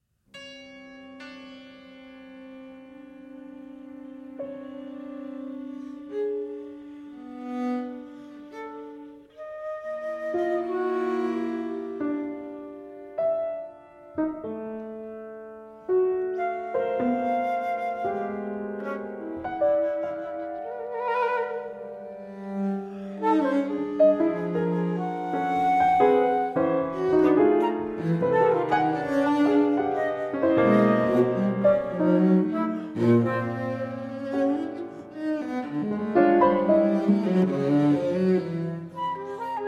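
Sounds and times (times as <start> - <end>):
cello: 0.4 - 39.6
piano: 0.4 - 39.6
flute: 8.5 - 12.6, 16.0 - 35.8, 36.4 - 39.6.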